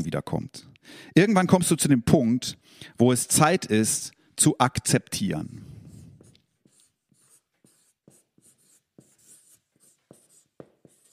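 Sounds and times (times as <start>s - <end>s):
speech: 0.0s - 5.7s
pen scratching across paper while drawing: 5.8s - 11.1s.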